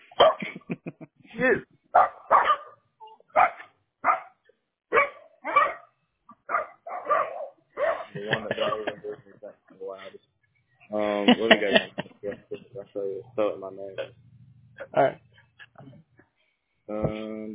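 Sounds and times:
dogs barking: 0.0 - 0.6, 1.9 - 10.1
laughter: 0.0 - 1.6, 8.0 - 10.2, 10.9 - 14.1
speech: 1.4 - 2.1.

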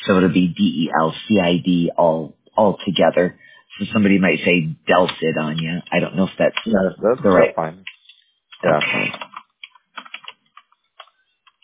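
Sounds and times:
speech: 0.0 - 7.9, 8.6 - 9.2
typing on a computer keyboard: 8.8 - 11.6.

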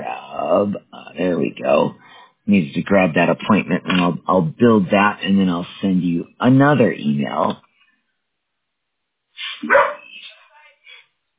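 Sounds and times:
speech: 0.5 - 7.6, 9.6 - 9.8
dog barking and yipping: 9.6 - 10.2.

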